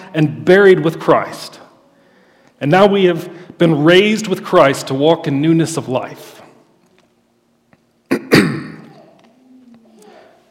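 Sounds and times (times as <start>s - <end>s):
speech: 0.1s - 1.6s, 2.6s - 6.4s
sharp coughs from a tickle in the throat: 8.1s - 9.2s.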